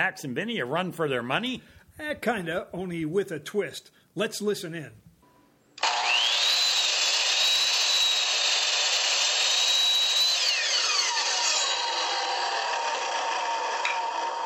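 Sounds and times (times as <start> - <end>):
speech: 0.0 - 5.0
power saw whining at a construction job site: 5.8 - 14.4.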